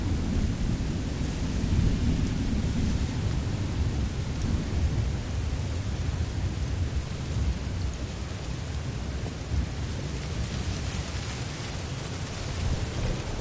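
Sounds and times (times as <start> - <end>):
thunder rumbling during a spring storm on the open plains: 0.0 - 7.8, 12.4 - 13.4
rain pouring during a spring storm on the open plains: 0.0 - 13.4.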